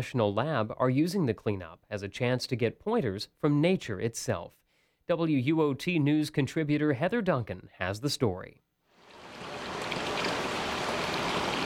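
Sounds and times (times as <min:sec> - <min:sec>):
speech: 0:00.0 - 0:08.6
water rippling over smooth rocks in an artificial stream: 0:09.0 - 0:11.6.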